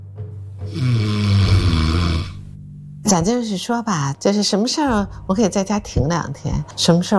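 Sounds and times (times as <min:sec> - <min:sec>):
sleeping person snoring: 0:00.7 - 0:02.5
speech: 0:03.1 - 0:07.1.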